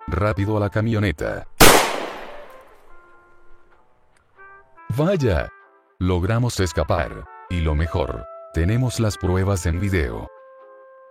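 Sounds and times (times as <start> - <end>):
speech: 0.1 - 1.5, 4.9 - 10.4
gunshot fired during an escape: 1.6 - 2.8.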